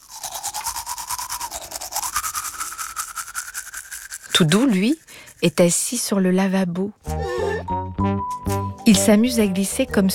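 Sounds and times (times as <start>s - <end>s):
toothbrush scrubbing teeth at bedtime: 0.0s - 6.1s, 8.3s - 8.9s
speech: 4.4s - 7.2s, 8.9s - 10.1s.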